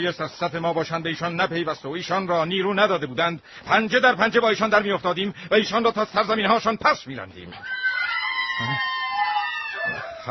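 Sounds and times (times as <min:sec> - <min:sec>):
speech: 0:00.0 - 0:07.8, 0:08.6 - 0:08.9
several women screaming and wailing over the death of the queen: 0:07.6 - 0:10.2.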